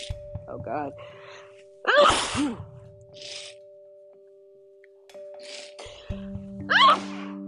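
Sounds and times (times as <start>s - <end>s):
speech: 0.0s - 1.2s, 1.8s - 3.4s
person sneezing: 1.9s - 3.5s, 6.7s - 7.3s
breathy sniffs: 3.2s - 3.6s, 5.2s - 6.2s.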